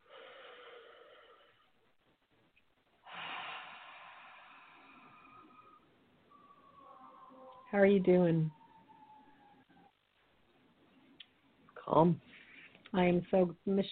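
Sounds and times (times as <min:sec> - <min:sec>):
deep noisy breath in and out: 0:00.0 - 0:01.8, 0:03.0 - 0:05.9
speech: 0:07.7 - 0:08.6, 0:12.0 - 0:12.3, 0:12.9 - 0:13.8.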